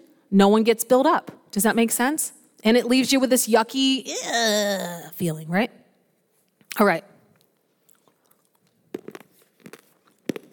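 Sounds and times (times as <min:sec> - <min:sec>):
speech: 0:00.3 - 0:05.8, 0:06.8 - 0:07.1
crunchy chewing of food: 0:07.8 - 0:10.5.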